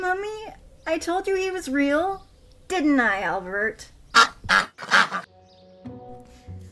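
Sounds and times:
speech: 0.1 - 4.7
duck quacking: 4.1 - 5.2.

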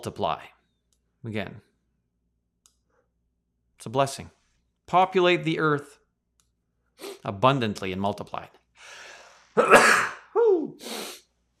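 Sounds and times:
speech: 0.0 - 0.6, 1.2 - 1.7, 3.8 - 6.0, 7.0 - 9.0, 9.6 - 11.1
loud explosive sneeze: 9.6 - 11.2.

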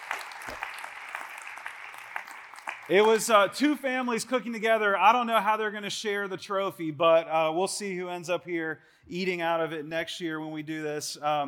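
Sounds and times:
audience crowd clapping: 0.0 - 3.5
speech: 2.9 - 11.4.

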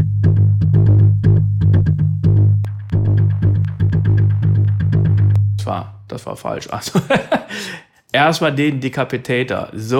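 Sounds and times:
looping synth sequence of plucked notes with echo delay plugin: 0.0 - 6.0
steady low droning synth bass: 0.0 - 6.0
speech: 6.1 - 9.9.

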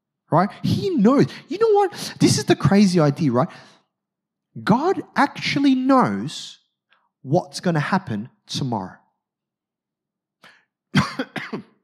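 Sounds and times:
speech: 0.3 - 3.8, 4.6 - 6.6, 7.2 - 9.0
throat clearing: 10.4 - 11.8
harsh coughs: 10.9 - 11.8.

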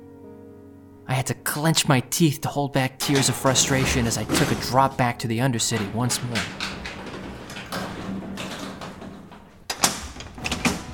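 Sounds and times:
speech: 1.1 - 6.8
elevator doors metallic thud and clunks: 3.0 - 10.9
grimy metal elevator doors sliding shut: 3.0 - 10.9.

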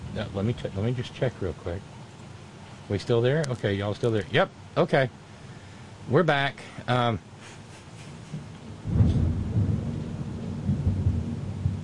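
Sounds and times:
rain hissing: 0.0 - 11.8
speech: 0.2 - 2.0, 2.9 - 5.2, 6.1 - 7.6
thunder rolling during a thunderstorm: 8.3 - 11.8.

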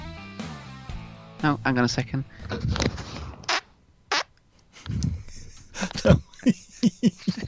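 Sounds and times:
speech: 1.4 - 2.9, 6.1 - 6.6
fart in two short squeaky bursts: 3.4 - 4.3
people laughing: 4.7 - 7.4.

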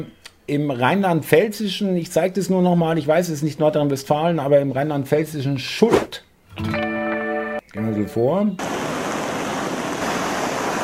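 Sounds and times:
speech: 0.0 - 6.8, 7.8 - 8.8
rushing floodwater in a flooded village: 8.6 - 10.8.

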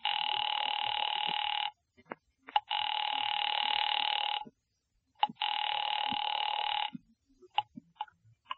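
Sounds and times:
telephone line ringing with electronic bursts: 0.0 - 1.8, 2.7 - 4.4, 5.3 - 6.9.

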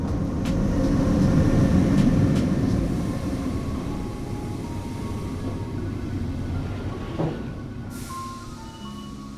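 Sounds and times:
train arriving at a station and slowing: 0.0 - 9.3.

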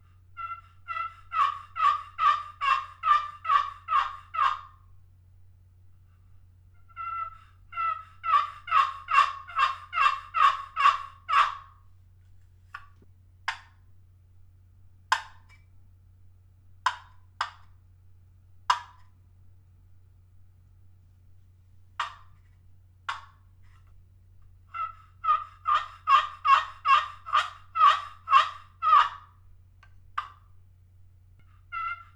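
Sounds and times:
low steady hum: 0.0 - 32.1
handmade diamond wood turkey box call yelps: 0.4 - 4.8, 6.8 - 11.8, 24.7 - 29.4, 30.2 - 30.4, 31.4 - 32.1.

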